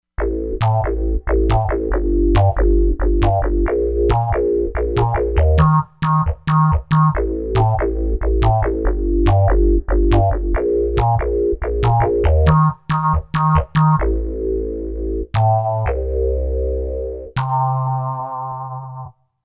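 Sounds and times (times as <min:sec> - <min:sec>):
synth bass: 0:00.2 - 0:19.1.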